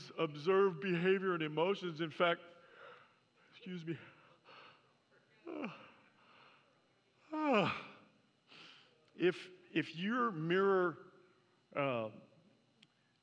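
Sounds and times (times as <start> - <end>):
speech: 0.2 - 2.6, 3.6 - 4.2, 5.5 - 5.9, 7.3 - 7.9, 9.2 - 11.1, 11.7 - 12.3
pastor yawning aloud during a sermon: 5.4 - 6.0, 7.3 - 8.0.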